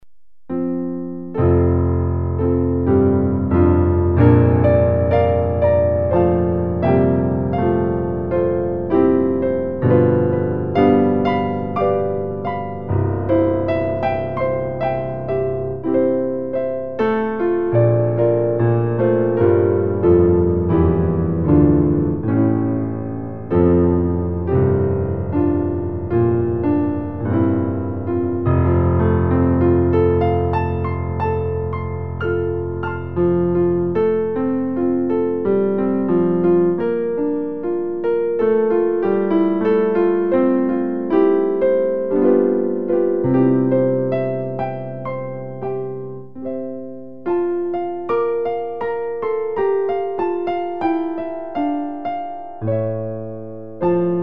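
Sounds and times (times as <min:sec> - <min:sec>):
piano piece: 0:00.0 - 0:54.2.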